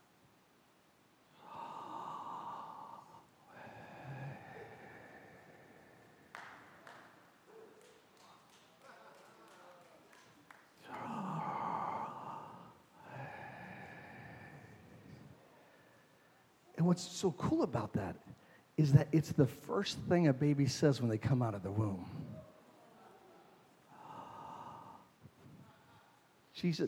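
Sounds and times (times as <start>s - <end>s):
person breathing in and out: 1.3s - 6.8s, 10.8s - 16.6s, 23.9s - 26.2s
speech: 16.8s - 22.2s, 26.6s - 26.8s.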